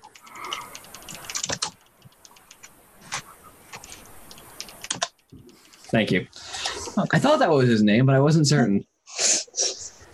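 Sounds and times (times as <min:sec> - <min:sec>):
typing on a computer keyboard: 0:00.0 - 0:05.9
speech: 0:05.9 - 0:06.4, 0:07.0 - 0:08.9.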